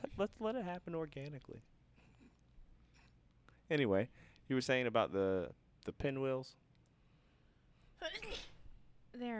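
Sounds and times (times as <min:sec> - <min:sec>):
speech: 0:00.2 - 0:01.7, 0:03.7 - 0:06.6, 0:08.0 - 0:08.5, 0:09.2 - 0:09.3
person sneezing: 0:08.1 - 0:08.6.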